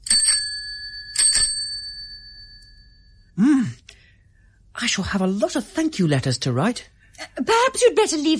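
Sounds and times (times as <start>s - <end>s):
small bicycle-style bell on a wheeled shopping basket ringing: 0.0s - 3.3s
speech: 3.4s - 3.7s, 4.8s - 8.3s
voiced murmur or sigh: 3.4s - 3.9s.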